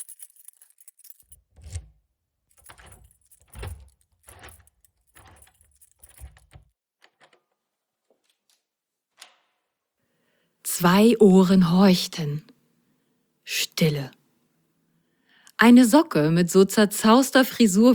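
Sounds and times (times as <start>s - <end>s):
key rattling and scraping in a lock: 0.0s - 7.6s
speech: 10.8s - 12.5s, 13.8s - 14.2s, 15.6s - 17.9s.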